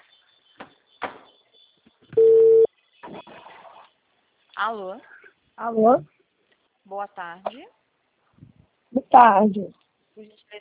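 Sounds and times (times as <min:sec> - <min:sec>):
ringback tone on an outgoing telephone call: 0:02.2 - 0:02.7
speech: 0:04.6 - 0:06.2, 0:06.9 - 0:07.8, 0:09.1 - 0:10.6.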